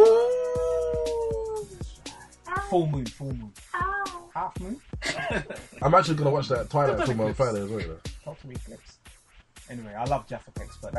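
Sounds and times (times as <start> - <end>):
person imitating a wolf howl: 0.0 - 1.8
speech: 2.7 - 3.6, 4.4 - 9.0, 9.7 - 10.9
laughter: 5.0 - 8.0.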